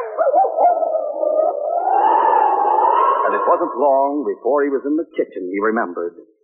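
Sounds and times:
dog whimpering happily: 0:00.0 - 0:03.7
speech: 0:03.4 - 0:06.4.

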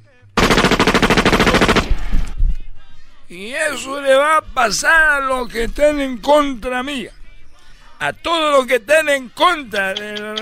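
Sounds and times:
firing squad gunfire volley: 0:00.4 - 0:02.4
speech: 0:03.3 - 0:07.2, 0:08.0 - 0:10.4.

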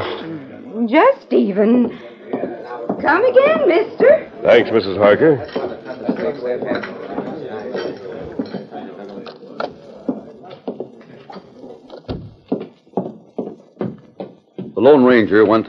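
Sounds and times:
busy clatter: 0:00.0 - 0:15.6
murmur of voices: 0:00.0 - 0:15.6
speech: 0:00.9 - 0:02.1, 0:03.0 - 0:07.0, 0:14.8 - 0:15.6
horse hooves clip-clopping at a walking pace: 0:05.4 - 0:15.6.

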